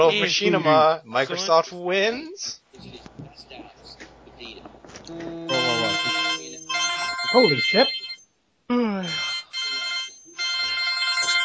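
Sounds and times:
speech: 0:00.0 - 0:02.6, 0:07.3 - 0:08.0, 0:08.7 - 0:09.2
phone ringtone with bright electronic melody: 0:05.5 - 0:08.3, 0:09.0 - 0:11.4.

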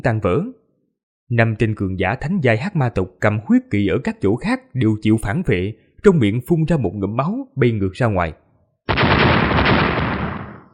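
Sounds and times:
speech: 0:00.0 - 0:00.6, 0:01.3 - 0:09.0
rapid barrage of explosions: 0:08.9 - 0:10.7.

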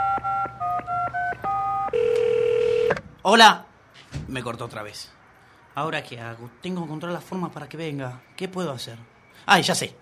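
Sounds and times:
telephone keypad tones dialing a number: 0:00.0 - 0:03.0
speech: 0:03.2 - 0:03.6, 0:04.3 - 0:05.2, 0:05.8 - 0:09.9.

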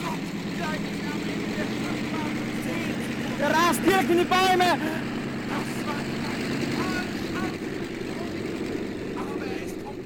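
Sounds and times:
propeller airplane engine taking off and flying: 0:00.0 - 0:10.0
speech: 0:03.4 - 0:05.1.

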